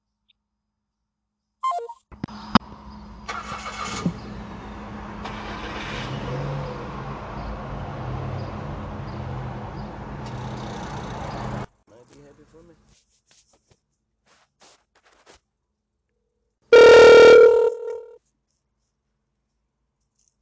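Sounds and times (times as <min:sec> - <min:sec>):
brief electronic tone: 0:01.6 - 0:02.1, 0:16.8 - 0:18.2
car engine rumbling while driving: 0:02.2 - 0:11.8.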